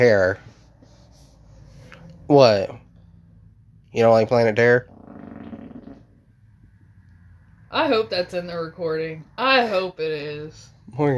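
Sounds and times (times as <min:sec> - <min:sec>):
speech: 0:00.0 - 0:00.5, 0:02.3 - 0:02.8, 0:03.9 - 0:05.0, 0:07.7 - 0:11.1
low rumbling fart: 0:04.8 - 0:06.3.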